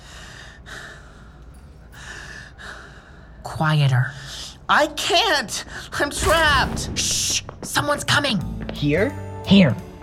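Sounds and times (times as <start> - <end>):
heavy labored raspy breathing: 0.0 - 3.4
speech: 3.5 - 9.9.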